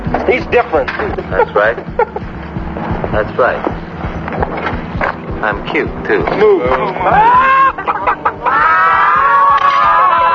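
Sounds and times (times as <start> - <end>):
speech: 0.3 - 2.2, 2.8 - 4.5, 5.4 - 8.7
laughter: 1.0 - 2.4, 6.6 - 10.3
voice imitating chicken clucking: 6.8 - 8.8.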